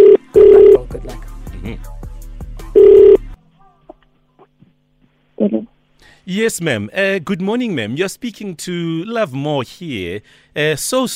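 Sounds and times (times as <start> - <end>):
telephone ringback tone on an outgoing call heard through the line: 0.0 - 0.8, 2.8 - 3.2
speech: 6.3 - 11.1.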